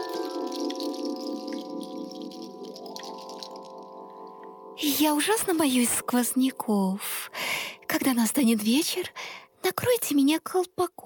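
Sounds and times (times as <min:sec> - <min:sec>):
spring water pouring from a watering can onto a flower: 0:00.0 - 0:05.9
speech: 0:04.8 - 0:07.3, 0:08.0 - 0:09.2, 0:09.8 - 0:11.0.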